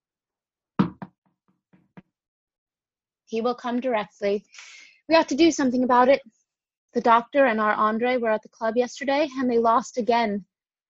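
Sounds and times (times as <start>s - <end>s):
knocking on a door: 0.8s - 1.2s
speech: 3.3s - 10.5s.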